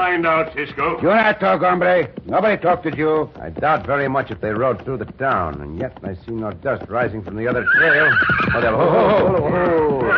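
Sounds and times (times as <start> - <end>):
speech: 0.2 - 10.1
horse whinnying: 7.5 - 10.1.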